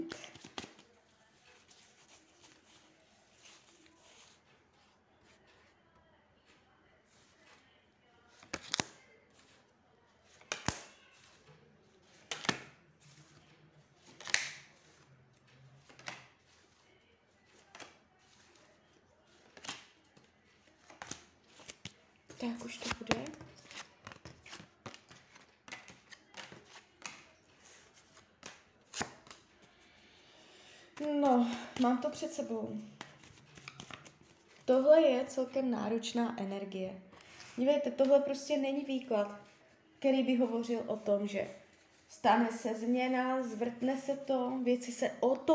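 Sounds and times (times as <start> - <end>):
tarot cards being shuffled: 0.0 - 5.7, 8.3 - 16.8, 17.5 - 29.8, 31.0 - 34.7
speech: 22.4 - 23.6, 31.2 - 33.0, 34.7 - 41.6, 42.2 - 45.5.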